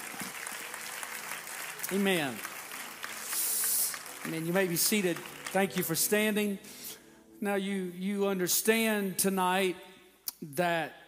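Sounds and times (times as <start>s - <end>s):
crowd clapping hands in praise: 0.0s - 6.6s
speech: 1.9s - 2.5s, 4.2s - 6.8s, 7.4s - 11.0s.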